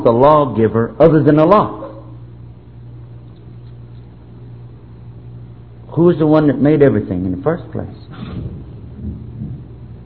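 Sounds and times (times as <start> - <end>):
speech: 0.0 - 1.8, 6.0 - 8.5
deep low rumble of thunder: 8.4 - 10.0.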